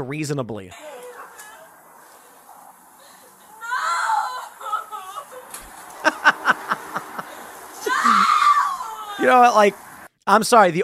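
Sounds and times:
speech: 0.0s - 1.0s, 9.2s - 10.8s
woman wailing and crying in anguish: 3.0s - 5.5s, 7.1s - 9.3s
woman screaming: 3.4s - 5.5s, 7.8s - 9.4s
laughter: 4.3s - 8.2s.

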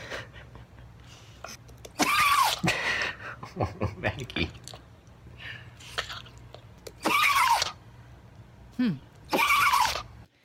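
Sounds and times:
elderly rat terrier sneezing: 1.9s - 2.6s, 7.0s - 7.8s, 9.3s - 10.1s
speech: 3.6s - 4.6s.

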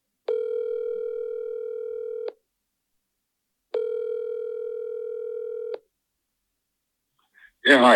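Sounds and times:
buzzing telephone line tone: 0.3s - 2.4s, 3.8s - 5.8s
speech: 7.6s - 7.9s.

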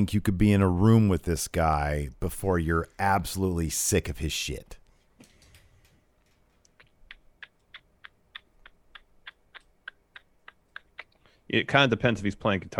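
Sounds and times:
speech: 0.0s - 4.8s, 11.5s - 12.7s
voice imitating a ticking clock with mouth clicks: 6.6s - 11.4s.

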